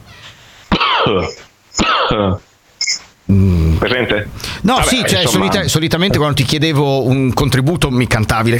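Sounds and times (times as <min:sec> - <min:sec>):
harsh raspy wheezy coughing: 0:00.7 - 0:02.4
speech: 0:01.1 - 0:08.5.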